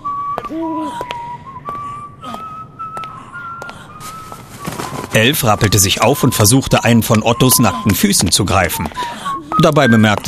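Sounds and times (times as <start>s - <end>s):
person whistling a cheerful bouncy tune: 0.0s - 10.2s
speech: 0.5s - 1.2s, 5.2s - 10.2s
rustling: 4.0s - 6.0s.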